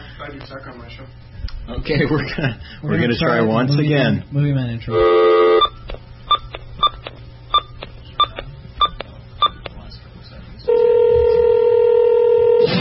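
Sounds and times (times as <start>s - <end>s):
speech: 0.3s - 5.5s
steady held phone tone: 4.9s - 7.0s, 10.7s - 12.7s.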